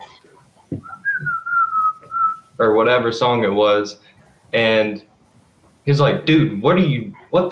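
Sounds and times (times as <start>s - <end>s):
faint low noise: 0.0s - 7.5s
person whistling a short tune: 0.8s - 2.4s
speech: 2.6s - 5.1s, 5.8s - 7.5s.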